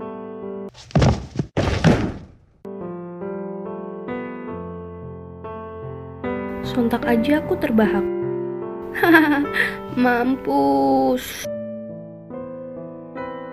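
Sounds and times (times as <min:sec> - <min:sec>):
heavy body thudding onto the ground: 0:00.7 - 0:02.6
speech: 0:06.8 - 0:08.2, 0:09.1 - 0:11.5
laughter: 0:09.0 - 0:09.8.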